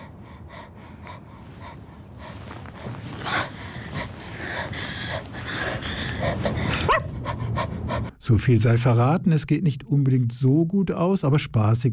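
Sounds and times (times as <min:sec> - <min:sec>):
dog panting heavily: 0:00.0 - 0:08.1
speech: 0:08.3 - 0:11.9.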